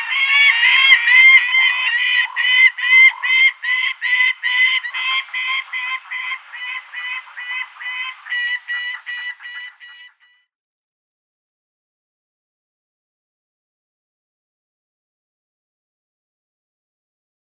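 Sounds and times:
gyrfalcon nestling giving harsh rasping squeals: 0.0s - 10.1s.

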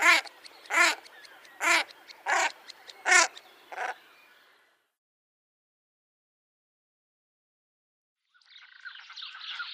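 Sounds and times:
common shelduck calling: 0.0s - 4.0s.

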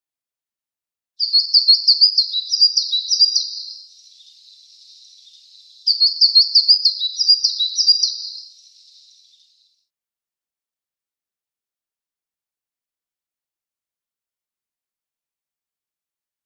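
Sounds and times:
Taiga flycatcher singing: 1.2s - 9.8s.

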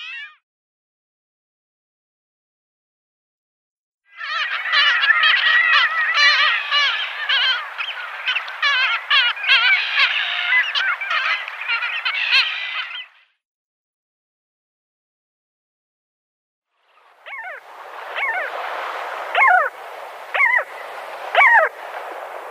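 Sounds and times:
Arctic skua calls at the nest: 4.1s - 13.3s, 17.2s - 22.4s.

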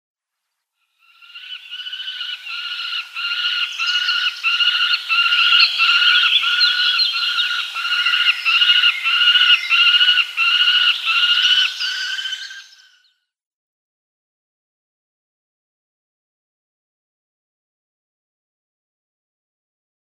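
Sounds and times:
Peregrine Falcon nestling: 1.4s - 12.2s.

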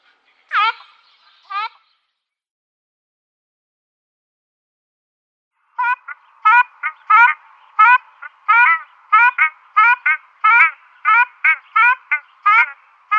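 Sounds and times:
ruddy shelduck nasal honks: 0.5s - 1.8s, 5.8s - 13.1s.

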